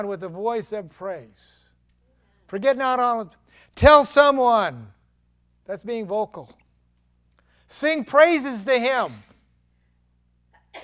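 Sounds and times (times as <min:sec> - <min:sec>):
speech: 0:00.0 - 0:01.6, 0:02.5 - 0:05.0, 0:05.7 - 0:06.6, 0:07.7 - 0:09.3
low steady hum: 0:00.0 - 0:10.8
person sneezing: 0:10.5 - 0:10.8.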